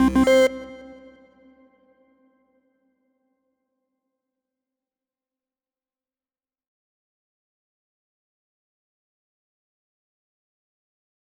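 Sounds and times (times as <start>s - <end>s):
slot machine spinning: 0.0s - 0.7s
slot machine win jingle: 0.0s - 1.0s.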